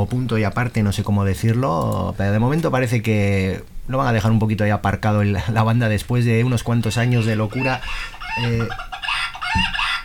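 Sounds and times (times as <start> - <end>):
speech: 0.0 - 9.9
rooster crowing: 7.5 - 10.0.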